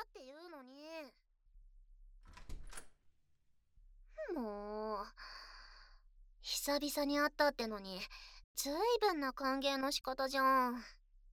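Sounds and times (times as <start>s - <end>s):
door pushed shut with a soft sliding rustle: 2.3s - 2.9s
speech: 6.6s - 11.0s.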